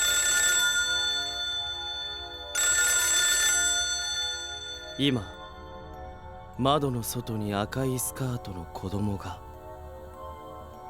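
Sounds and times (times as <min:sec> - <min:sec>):
telephone ringing: 0:00.0 - 0:06.3
speech: 0:05.0 - 0:05.4, 0:06.6 - 0:09.4.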